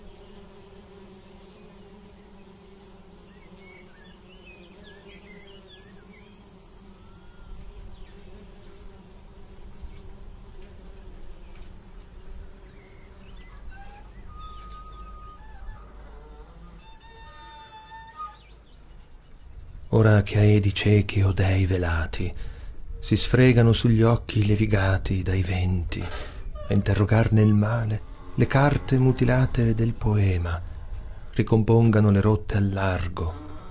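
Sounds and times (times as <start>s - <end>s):
bees buzzing: 0.0s - 33.6s
faint bird chirps: 3.3s - 8.2s, 12.6s - 20.0s
speech: 19.9s - 30.7s, 31.4s - 33.5s.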